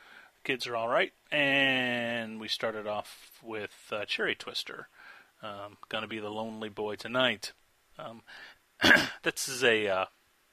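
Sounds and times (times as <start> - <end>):
speech: 0.4 - 10.2
raspy throat clearing: 8.8 - 9.2
short cough: 8.8 - 9.2.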